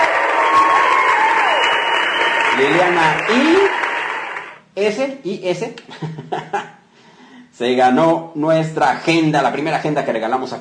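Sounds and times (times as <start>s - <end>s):
audience applause: 0.0s - 4.6s
speech: 2.6s - 3.8s, 4.8s - 6.5s, 7.6s - 10.5s.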